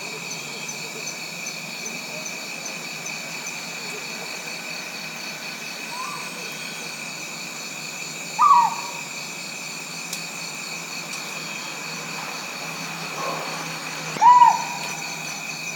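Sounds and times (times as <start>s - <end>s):
insects trilling: 0.0s - 15.7s
Rinjani scops owl Otus jolandae hooting: 5.8s - 6.5s, 8.3s - 9.2s, 13.2s - 15.6s.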